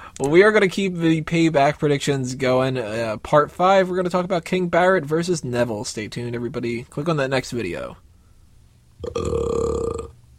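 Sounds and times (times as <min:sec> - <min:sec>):
speech: 0:00.2 - 0:08.0, 0:09.0 - 0:09.6
loud rumbling burp: 0:09.0 - 0:10.2.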